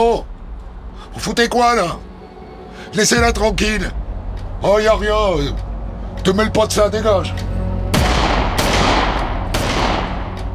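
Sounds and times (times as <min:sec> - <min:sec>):
speech: 0:01.2 - 0:02.1, 0:02.8 - 0:04.0, 0:04.6 - 0:07.5
gunshots from rubber bullets fired at a motorcyclist: 0:08.0 - 0:10.5.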